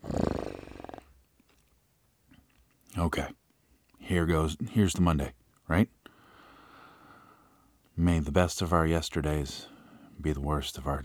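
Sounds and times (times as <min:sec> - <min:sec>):
person imitating a big cat growl: 0:00.0 - 0:01.0
speech: 0:03.0 - 0:03.4, 0:04.1 - 0:06.0, 0:08.0 - 0:11.0.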